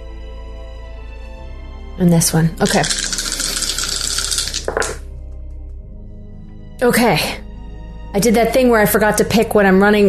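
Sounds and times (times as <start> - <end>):
speech: 2.0 - 3.2, 6.8 - 7.4, 8.1 - 10.0
four dice rattling and clattering across a table: 2.6 - 5.0.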